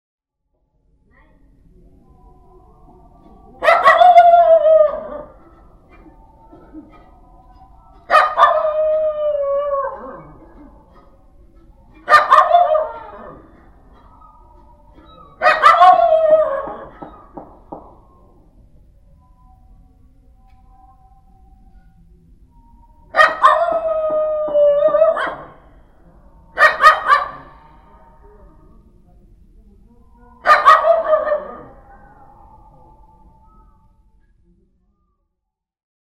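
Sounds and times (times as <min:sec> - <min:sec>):
dogs: 0:03.2 - 0:18.1, 0:23.1 - 0:25.8, 0:26.5 - 0:28.1, 0:30.4 - 0:34.0.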